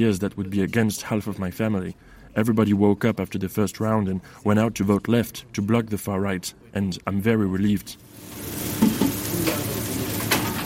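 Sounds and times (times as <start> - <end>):
speech: 0.0 - 8.7
steaks and burgers sizzling on a kitchen cooktop: 8.0 - 10.6.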